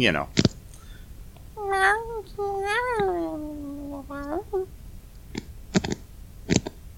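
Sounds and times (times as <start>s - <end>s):
speech: 0.0s - 0.4s, 1.7s - 4.8s
person imitating cat meows: 1.6s - 4.7s.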